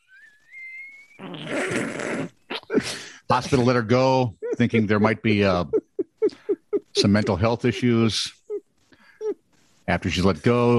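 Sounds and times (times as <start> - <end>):
rising whistle tone: 0.0 - 1.2
loud raspy fart: 1.1 - 2.7
speech: 2.2 - 5.8, 7.0 - 8.4, 9.9 - 10.7
laughter: 2.8 - 8.4.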